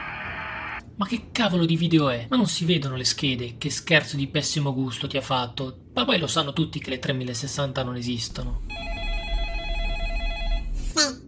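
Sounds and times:
speech: 1.0 - 8.8
telephone ringing with a steady electronic tone: 8.7 - 10.8.

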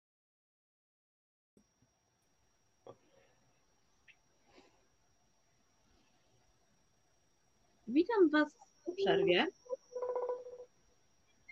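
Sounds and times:
speech: 7.9 - 9.6
mobile phone ringing during a call: 8.9 - 10.6.

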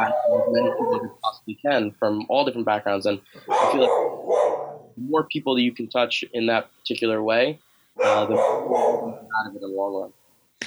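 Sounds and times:
dog barking inside a house: 0.0 - 1.1, 3.5 - 4.9, 8.0 - 9.2
speech: 0.0 - 10.6.

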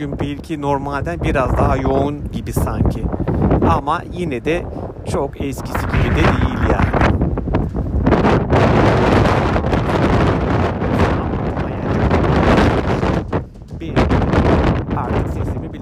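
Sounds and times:
speech: 0.0 - 7.1
strong wind buffeting microphone on high-rise balcony: 0.0 - 15.8.

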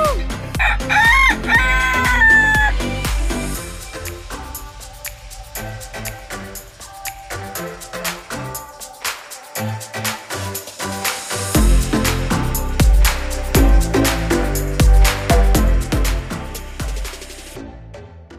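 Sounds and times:
rhythmic music with steady beats: 0.0 - 18.3
rooster crowing loudly: 0.6 - 2.9.

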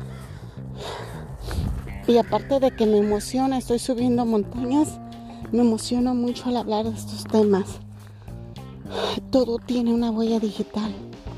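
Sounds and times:
crows cawing in a park: 0.0 - 1.2, 1.8 - 3.8
speech: 2.1 - 7.8, 8.9 - 11.1.

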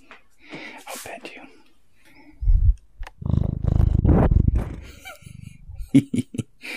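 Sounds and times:
cat purring in a bedroom: 3.0 - 5.9.

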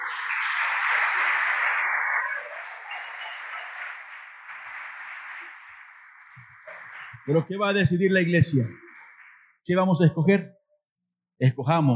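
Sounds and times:
audience applauding: 0.0 - 9.5
speech: 7.2 - 8.8, 9.6 - 10.6, 11.4 - 11.9.

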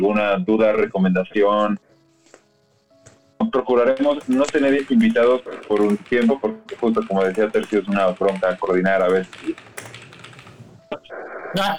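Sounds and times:
speech: 0.0 - 1.8, 3.4 - 9.9, 11.5 - 11.7
typing on a computer keyboard: 3.9 - 10.9.

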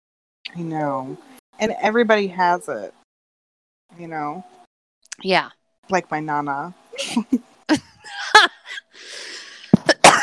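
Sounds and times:
speech: 0.5 - 3.0, 3.9 - 4.6, 5.2 - 7.9
laughter: 7.0 - 10.2
person coughing sharply into a microphone: 9.7 - 10.2.

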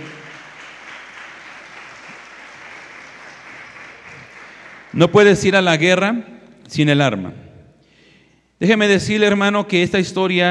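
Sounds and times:
audience clapping loudly: 0.0 - 5.6
speech: 4.9 - 7.4, 8.6 - 10.4.

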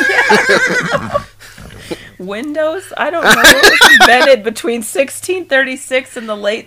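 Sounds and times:
laughter: 0.0 - 1.3, 3.2 - 4.4
horse neighing: 0.2 - 2.0
speech: 0.3 - 1.2, 2.2 - 6.6
horse snorting: 0.7 - 2.3.

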